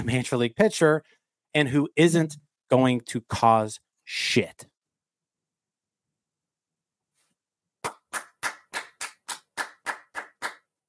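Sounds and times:
speech: 0:00.0 - 0:04.7
single person clapping: 0:07.8 - 0:10.7.

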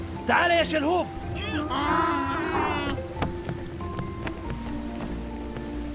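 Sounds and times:
heavy rain hissing: 0:00.0 - 0:05.9
speech: 0:00.3 - 0:03.0
sharp drips and taps in rain: 0:03.0 - 0:05.8.

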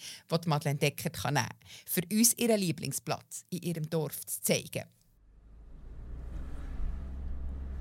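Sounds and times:
speech: 0:00.3 - 0:05.0
road traffic rumble in a village centre: 0:05.3 - 0:07.7.

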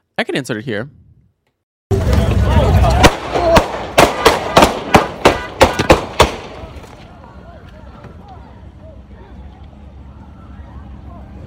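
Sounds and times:
speech: 0:00.2 - 0:01.0
noisy rumbling background: 0:01.9 - 0:11.4
gunshots during a fight at a party: 0:02.8 - 0:06.7.

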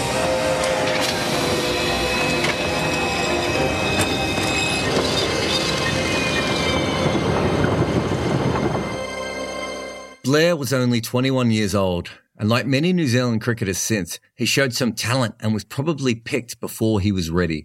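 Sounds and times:
train rumbling with heavy clattering: 0:00.0 - 0:10.2
train wheels squealing metallically: 0:01.2 - 0:09.9
speech: 0:10.3 - 0:17.6.

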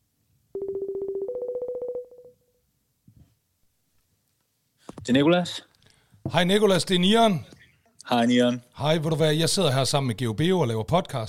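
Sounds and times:
loud electronic phone ringtone trilling: 0:00.6 - 0:02.4
speech: 0:05.0 - 0:05.7, 0:06.3 - 0:07.5, 0:08.1 - 0:11.2.

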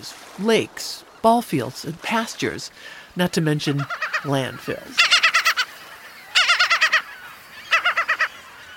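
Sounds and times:
speech: 0:00.0 - 0:05.1
gulls calling with harsh laughing cries: 0:02.1 - 0:08.7.

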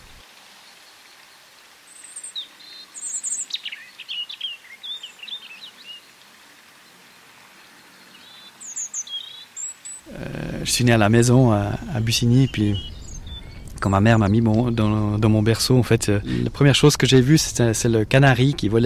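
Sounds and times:
soft steady hiss: 0:00.0 - 0:18.8
European robin singing in winter: 0:01.9 - 0:06.2, 0:07.6 - 0:17.2
speech: 0:10.2 - 0:12.9, 0:13.8 - 0:18.8.

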